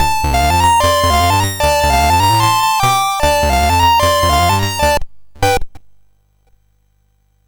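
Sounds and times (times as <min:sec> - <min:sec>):
chiptune game music from a sound chip: 0:00.0 - 0:05.8.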